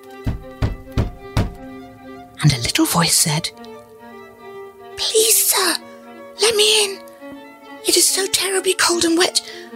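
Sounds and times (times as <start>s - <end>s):
faint steady tone: 0.0s - 9.7s
firm heavy knocks on a door: 0.1s - 1.8s
speech: 2.4s - 3.7s, 5.0s - 7.0s, 7.8s - 9.6s.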